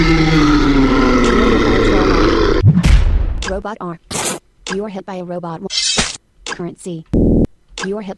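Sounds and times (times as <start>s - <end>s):
deep rumbling troll roar sound effect: 0.0s - 2.6s
speech: 3.6s - 4.1s, 4.7s - 5.8s, 6.6s - 8.1s.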